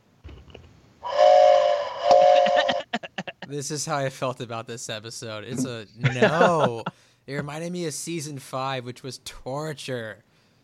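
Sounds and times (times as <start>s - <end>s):
mournful train whistle blasts: 1.0s - 2.8s
laughter: 2.4s - 3.5s, 5.6s - 7.5s
speech: 3.5s - 10.3s.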